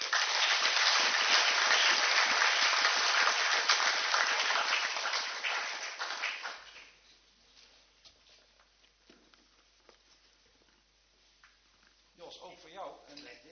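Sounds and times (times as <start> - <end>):
room full of people applauding: 0.0 - 7.0.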